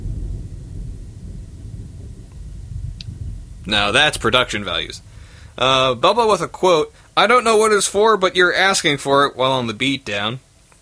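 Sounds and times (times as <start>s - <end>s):
thunder rumbling from a storm with lightning: 0.0s - 9.4s
faint tick: 3.0s - 3.2s
speech: 3.7s - 10.5s.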